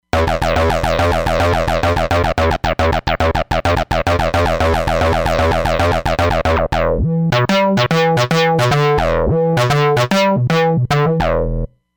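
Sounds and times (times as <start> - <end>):
lo-fi Roland Fantom XR synth: 0.0 - 11.7.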